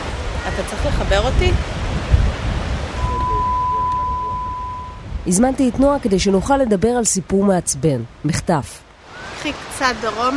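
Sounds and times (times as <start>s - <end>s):
waves washing at the Border Beach between Bat Yam and Jaffa: 0.0s - 10.3s
wind at the Border Beach between Bat Yam and Jaffa: 0.0s - 10.3s
speech: 0.6s - 2.2s, 5.2s - 8.8s, 9.4s - 10.3s
faint thin sustained tone: 3.0s - 5.0s.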